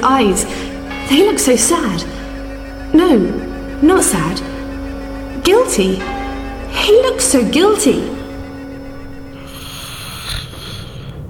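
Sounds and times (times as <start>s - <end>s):
speech: 0.0s - 2.2s, 2.9s - 4.5s, 5.4s - 8.2s
person snoring in their sleep: 9.4s - 11.2s.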